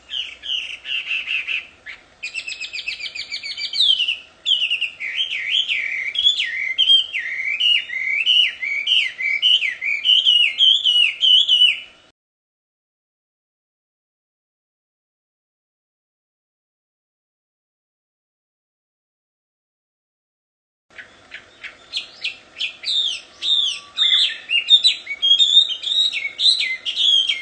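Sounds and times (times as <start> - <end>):
wild Chinese hwamei singing in its natural habitat: 0.0 - 12.1, 20.9 - 27.3.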